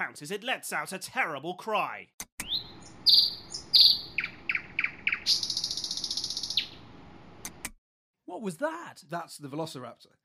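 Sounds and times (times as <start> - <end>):
speech: 0.1 - 2.3, 8.3 - 10.2
nightingale singing: 2.4 - 6.8.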